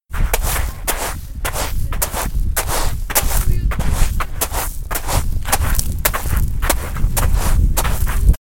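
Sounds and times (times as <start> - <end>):
pebbles: 0.4 - 8.4.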